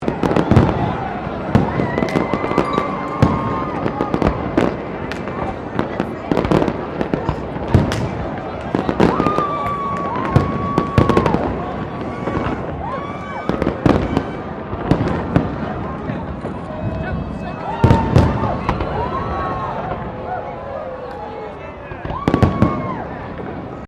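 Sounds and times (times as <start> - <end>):
New Year's Eve fireworks in Melbourne: 0.0 - 23.8
crowd cheering at New Year's Eve fireworks in Melbourne: 0.0 - 23.8.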